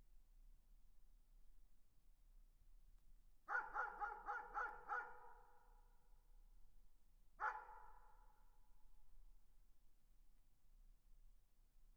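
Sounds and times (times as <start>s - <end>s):
dog giving sharp clipped barks: 3.5s - 5.5s, 7.4s - 8.1s.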